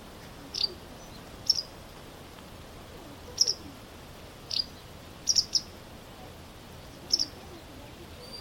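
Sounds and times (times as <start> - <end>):
faint background hiss: 0.0 - 8.3
white wagtail giving high clipped chirps: 0.5 - 1.7, 3.3 - 3.7, 4.5 - 5.7, 6.9 - 8.3.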